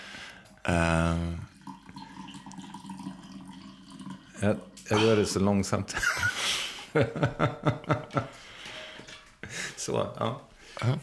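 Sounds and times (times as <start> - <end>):
coffee pouring slowly into a cup: 1.2 - 5.7
speech: 4.4 - 8.5, 9.8 - 11.0.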